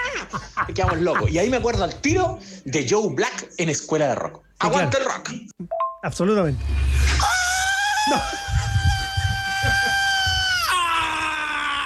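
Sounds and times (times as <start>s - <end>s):
laughter: 0.0s - 2.4s, 7.9s - 11.3s
speech: 0.3s - 7.3s, 8.1s - 8.4s
piercing high-pitched scream in a live thrash metal recording: 6.6s - 11.8s.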